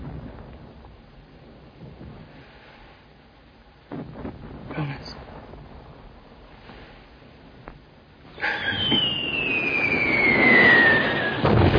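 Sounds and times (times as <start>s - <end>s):
high whistle of a bomb falling during an air raid on London: 8.3s - 11.7s.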